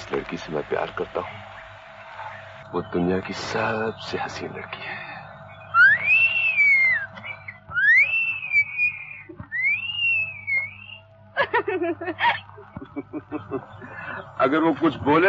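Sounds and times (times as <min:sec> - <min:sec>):
low hum: 0:00.0 - 0:15.2
speech: 0:00.1 - 0:01.6, 0:02.7 - 0:05.0, 0:14.4 - 0:15.2
girl whistling melodic phrases: 0:05.6 - 0:11.0
short breathy chuckling: 0:05.8 - 0:09.7, 0:11.4 - 0:14.4.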